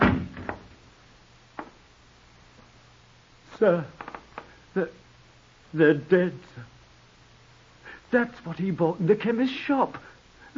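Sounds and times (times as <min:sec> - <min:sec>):
heavy door thudding shut: 0:00.0 - 0:00.7
speech: 0:03.6 - 0:04.0, 0:04.8 - 0:05.0, 0:05.7 - 0:06.7, 0:08.1 - 0:10.5.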